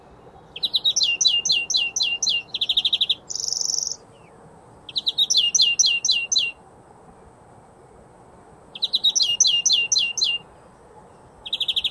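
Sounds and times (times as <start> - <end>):
European greenfinch Chloris chloris singing chirps, trill and buzzy wheeze: 0.2 - 6.6, 8.7 - 10.5, 11.1 - 11.8.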